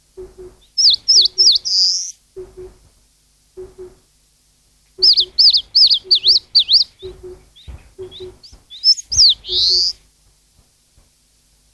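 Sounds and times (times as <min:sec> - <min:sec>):
Eastern crowned warbler song: 0:00.0 - 0:02.9, 0:03.6 - 0:04.0, 0:04.9 - 0:10.1
low paired bird notes: 0:00.0 - 0:02.9, 0:03.5 - 0:04.1, 0:05.0 - 0:10.0.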